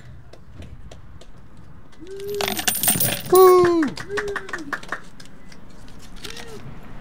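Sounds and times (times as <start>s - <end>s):
speech: 2.0s - 2.7s, 3.3s - 4.8s
donated pennies and silver coins dropped into a container: 2.2s - 3.6s.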